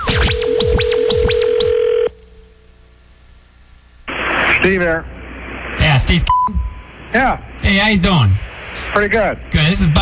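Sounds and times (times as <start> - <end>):
telephone ringing tone with warbling chirps: 0.1 - 2.5
speech: 4.7 - 5.1, 5.9 - 10.0.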